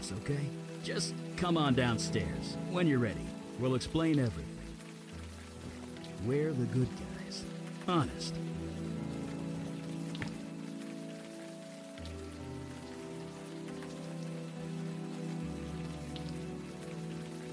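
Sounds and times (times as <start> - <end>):
heavy rain pouring: 0.0 - 17.5
speech: 0.1 - 4.5, 6.2 - 7.0, 7.9 - 8.7.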